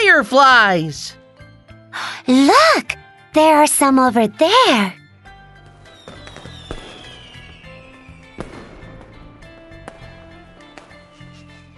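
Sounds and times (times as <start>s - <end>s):
speech: 0.2s - 1.2s, 2.0s - 5.0s
fireworks banging and crackling: 5.9s - 11.2s
descending firework whistle: 6.0s - 8.3s.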